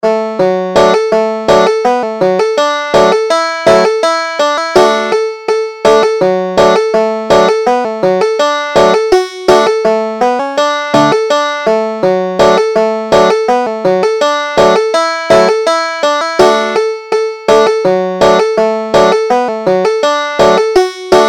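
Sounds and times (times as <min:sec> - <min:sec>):
banjo: 0:00.0 - 0:21.2.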